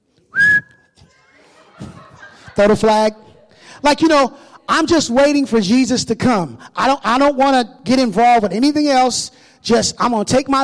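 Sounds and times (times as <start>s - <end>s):
shrill referee's whistle blast: 0.4s - 1.0s
laughter: 1.0s - 4.9s
speech: 2.6s - 3.2s, 3.8s - 10.6s.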